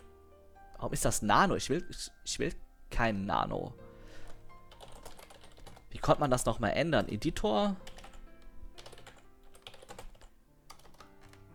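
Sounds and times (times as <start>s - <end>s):
speech: 0.8s - 3.8s, 5.9s - 7.9s
computer keyboard typing: 4.2s - 11.5s.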